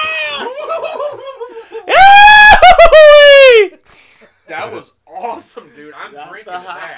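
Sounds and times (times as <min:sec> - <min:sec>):
man screaming cartoonishly: 0:00.0 - 0:00.7, 0:01.9 - 0:03.7
laughter: 0:00.2 - 0:02.0, 0:06.3 - 0:06.9.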